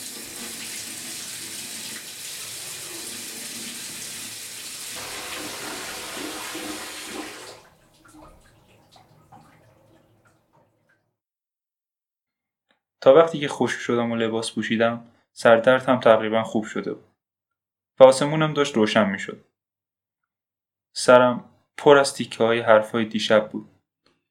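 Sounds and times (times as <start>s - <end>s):
shower water running: 0.0s - 10.4s
speech: 13.0s - 17.1s, 18.0s - 19.5s, 21.0s - 23.7s.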